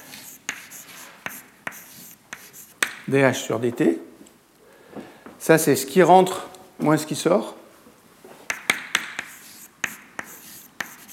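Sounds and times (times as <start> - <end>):
scratchy strokes writing an equation on a board: 0.0 - 2.8, 8.5 - 11.1
speech: 3.1 - 4.1, 5.5 - 7.6
sharp taps on a board: 8.5 - 10.0.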